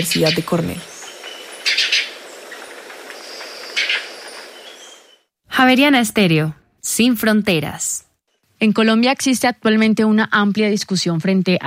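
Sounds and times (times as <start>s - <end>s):
speech: 0.0s - 0.9s, 5.6s - 8.0s, 8.6s - 11.6s
ochre guayabero buzzy trilled birdsong: 0.0s - 5.3s
steady hiss of outdoor background: 0.0s - 10.2s.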